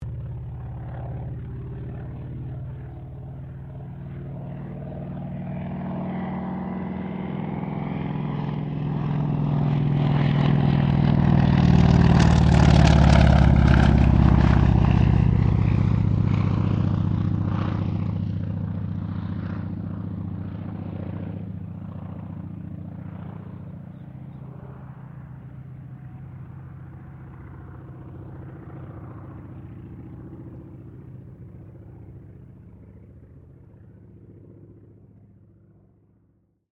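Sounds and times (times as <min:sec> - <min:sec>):
CA-28 Ceres agricultural aircraft passing: 0:00.0 - 0:36.4.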